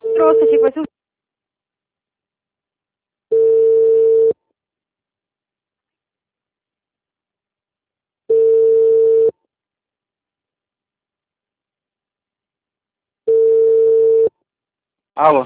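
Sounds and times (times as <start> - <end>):
telephone busy tone after a dropped call: 0.0 - 0.8, 3.3 - 4.4, 8.3 - 9.3, 13.3 - 14.3
speech: 0.2 - 1.0, 15.2 - 15.4.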